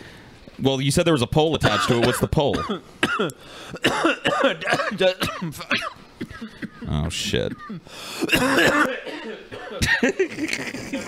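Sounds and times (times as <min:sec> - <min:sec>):
speech: 0:00.6 - 0:11.0
harsh hacking coughs: 0:01.6 - 0:11.0
breathy laugh-like gasps: 0:03.4 - 0:03.8, 0:07.8 - 0:08.3.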